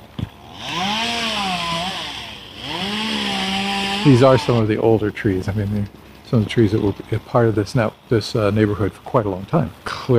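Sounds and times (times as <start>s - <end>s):
chainsaw revving through cuts while pruning trees: 0.3s - 4.8s
speech: 4.0s - 10.1s.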